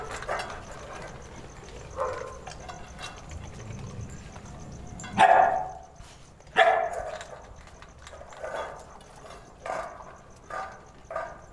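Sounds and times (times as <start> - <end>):
dog giving sharp barks: 0.0 - 2.8, 4.9 - 7.4, 8.2 - 11.5
several dogs eating and drinking water: 0.0 - 11.5.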